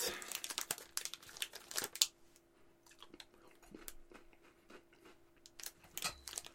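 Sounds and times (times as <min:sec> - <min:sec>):
Kit Kat candy bar wrapper crinkling and being torn open: 0:00.0 - 0:02.2, 0:05.6 - 0:06.5.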